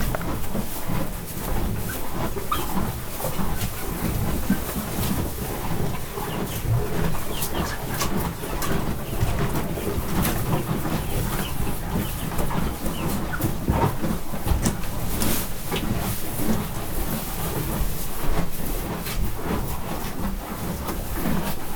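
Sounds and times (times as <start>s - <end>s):
Hungarian spotted cattle in a barn: 0.0s - 3.6s
chickens in a farmyard: 0.0s - 21.7s.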